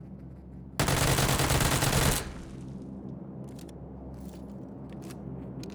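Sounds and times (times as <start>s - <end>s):
Uzi full auto fire: 0.8s - 2.8s.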